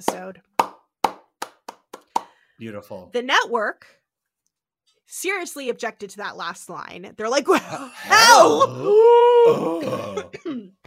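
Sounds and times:
speech: 0:00.0 - 0:00.5, 0:02.6 - 0:04.0, 0:05.1 - 0:10.8
person gasping: 0:07.7 - 0:10.4
person coughing: 0:09.8 - 0:10.8.

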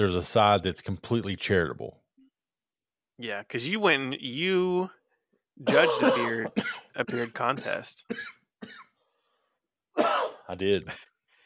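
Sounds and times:
speech: 0:00.0 - 0:02.0, 0:03.2 - 0:05.0, 0:05.6 - 0:08.8, 0:10.0 - 0:11.1
harsh throat clearing: 0:05.7 - 0:09.0
short throaty cough: 0:05.7 - 0:09.0, 0:10.0 - 0:10.5.

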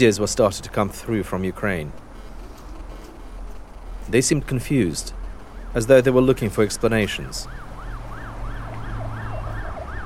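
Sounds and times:
speech: 0:00.0 - 0:02.0, 0:04.1 - 0:07.6
low engine rumble: 0:00.0 - 0:10.0
siren of speeding official cars wailing: 0:05.3 - 0:10.0.

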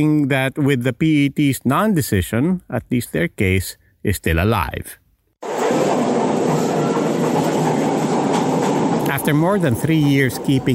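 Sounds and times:
speech: 0:00.0 - 0:05.0, 0:09.1 - 0:10.7
China-manufactured metro train rumbling on tracks on a test run: 0:05.4 - 0:10.7
metro train wheels clattering: 0:05.4 - 0:10.7.

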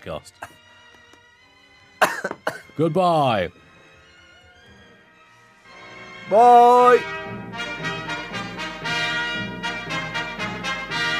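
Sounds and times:
speech: 0:00.0 - 0:00.6, 0:02.8 - 0:03.6, 0:06.3 - 0:07.5
person coughing: 0:02.0 - 0:02.8.

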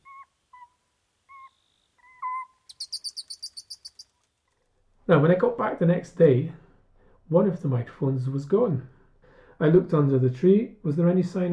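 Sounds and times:
Cyprus copse owl pair hooting while mating at night: 0:00.0 - 0:04.2
Cyprus copse owl high squeaky chirps while mating: 0:00.0 - 0:04.4
speech: 0:05.1 - 0:06.6, 0:07.3 - 0:09.0, 0:09.6 - 0:11.5.

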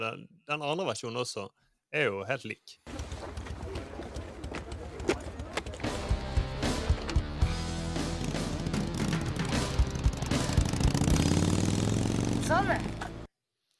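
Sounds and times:
speech: 0:00.0 - 0:03.4, 0:12.5 - 0:13.1
steady percussive knocks: 0:02.9 - 0:07.4
motorcycle engine starting and revving: 0:02.9 - 0:13.3
loud rhythmic music: 0:05.8 - 0:11.3.

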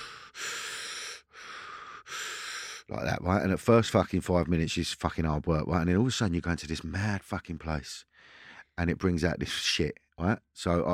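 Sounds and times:
person lying down breathing hard during breath work: 0:00.0 - 0:02.9, 0:08.1 - 0:08.8
speech: 0:02.9 - 0:08.1, 0:08.8 - 0:10.9.

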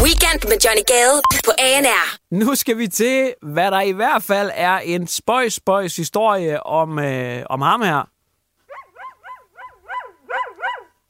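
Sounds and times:
speech: 0:00.4 - 0:08.1
dog barking in sharp high-pitched yips: 0:08.7 - 0:11.0.

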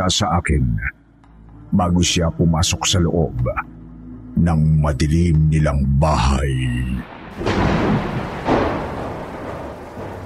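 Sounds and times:
speech: 0:00.0 - 0:01.0, 0:01.7 - 0:03.8, 0:04.4 - 0:06.8
thunderclaps rolling into a low rumble: 0:06.6 - 0:10.2
steady hissing rain: 0:07.0 - 0:10.2.

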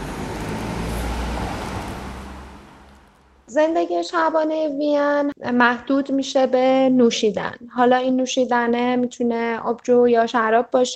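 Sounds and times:
car or motorbike passing on a quiet street: 0:00.0 - 0:03.5
speech: 0:03.5 - 0:10.9.

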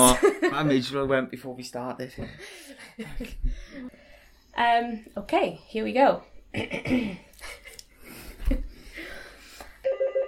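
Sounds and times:
speech: 0:00.0 - 0:04.0, 0:04.6 - 0:07.6
person coughing: 0:06.6 - 0:07.2
telephone ringing with bright electronic tones: 0:09.8 - 0:10.2.

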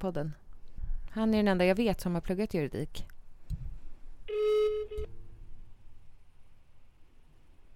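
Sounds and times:
speech: 0:00.0 - 0:00.4, 0:01.2 - 0:03.1
outgoing phone call ringing tone: 0:04.3 - 0:05.1.

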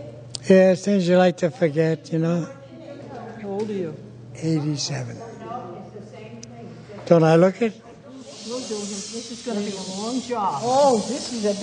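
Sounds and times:
speech: 0:00.0 - 0:02.6, 0:03.6 - 0:05.3, 0:07.1 - 0:07.8, 0:08.5 - 0:11.6
air hissing while inflating a human-sized inflatable monkey: 0:08.1 - 0:11.6
person murmuring faintly: 0:08.5 - 0:11.6.

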